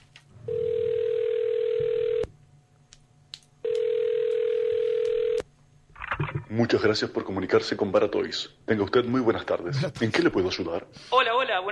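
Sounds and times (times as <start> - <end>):
telephone line tone while placing a call to a toy shop: 0.4 - 2.3, 3.6 - 5.4
speech: 6.6 - 11.3.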